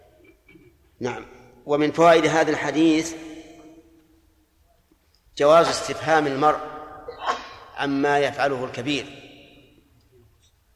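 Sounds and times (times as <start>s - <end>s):
speech: 1.0s - 3.3s, 5.4s - 6.7s, 7.8s - 9.2s
person sneezing: 7.1s - 7.7s.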